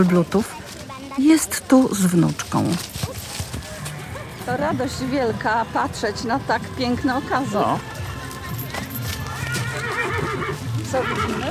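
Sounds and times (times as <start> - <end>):
speech: 0.0 - 0.6, 1.2 - 3.3, 4.5 - 7.9, 10.9 - 11.4
horse hooves clip-clopping in a warm-up arena: 0.0 - 11.4
Małopolski, Arabian and Thoroughbred horses neighing and whinnying in a warm-up arena: 1.4 - 11.4.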